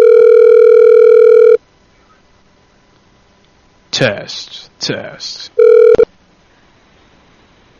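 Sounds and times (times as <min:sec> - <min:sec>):
fax machine answer tone over a phone line: 0:00.0 - 0:01.6, 0:05.6 - 0:06.1
phone line click: 0:00.0 - 0:01.6
speech: 0:04.0 - 0:05.6.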